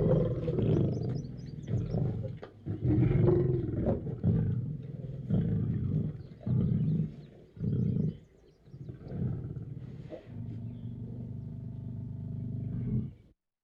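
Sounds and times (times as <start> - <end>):
lion in a cage roaring: 0.0 - 13.3.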